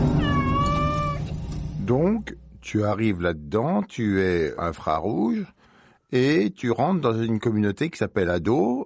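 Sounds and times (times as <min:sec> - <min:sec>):
cat meowing: 0:00.2 - 0:01.3
speech: 0:02.7 - 0:08.8.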